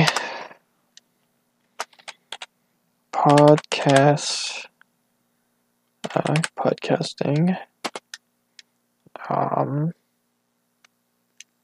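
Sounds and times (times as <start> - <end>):
physical computer keyboard clicks: 1.8 - 2.5, 3.2 - 4.0, 6.0 - 6.6
wordless voice: 3.1 - 4.8, 6.0 - 7.8, 9.1 - 10.0
speech: 3.2 - 4.7, 6.1 - 7.7, 9.3 - 10.0.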